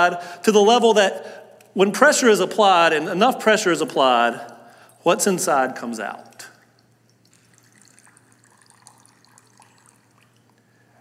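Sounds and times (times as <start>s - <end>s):
speech: 0.0s - 6.4s
water pouring from a cup: 5.9s - 10.8s.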